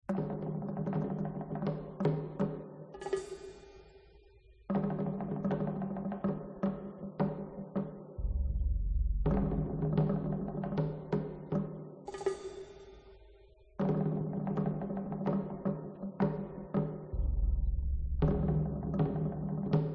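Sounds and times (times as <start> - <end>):
drums: 0.0 - 19.9.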